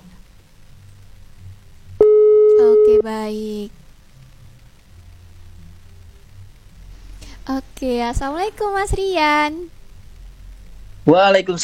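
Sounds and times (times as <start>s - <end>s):
faint low hum: 0.0s - 11.6s
telephone tone of an outgoing call: 2.0s - 3.0s
speech: 3.0s - 3.8s, 7.5s - 9.8s, 11.1s - 11.6s.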